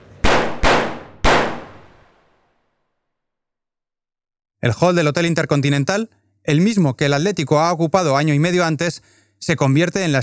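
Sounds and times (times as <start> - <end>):
pistol gunshots: 0.0 - 2.3
speech: 4.6 - 10.2.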